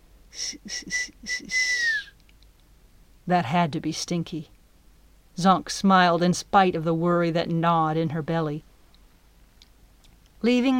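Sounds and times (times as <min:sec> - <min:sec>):
speech: 0:00.4 - 0:01.6, 0:03.3 - 0:04.6, 0:05.4 - 0:08.7, 0:10.4 - 0:10.7
faint airy teeth-only whistle among dead trees at night: 0:00.4 - 0:02.2.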